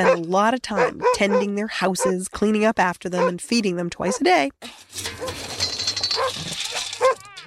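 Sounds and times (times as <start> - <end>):
sled dog barking: 0.0 - 2.2, 3.2 - 3.4, 4.1 - 4.3, 7.0 - 7.4
speech: 0.0 - 5.5.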